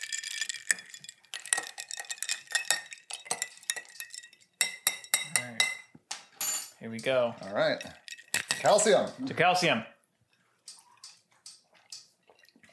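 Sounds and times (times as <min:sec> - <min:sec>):
spoon stirring a margarita clinking against the glass: 0:00.0 - 0:07.1, 0:07.7 - 0:08.9
speech: 0:06.8 - 0:08.0, 0:08.6 - 0:09.9.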